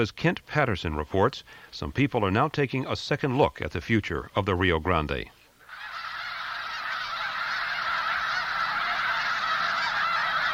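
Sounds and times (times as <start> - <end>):
speech: 0.0 - 5.4
flock of migratory snow geese honking at sunset in winter in New Mexico: 5.6 - 10.5.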